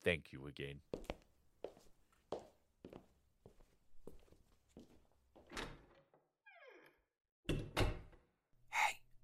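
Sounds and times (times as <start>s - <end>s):
steady footsteps walking off: 0.9s - 5.5s
door hinge creaking with a falling squeal: 5.5s - 7.8s.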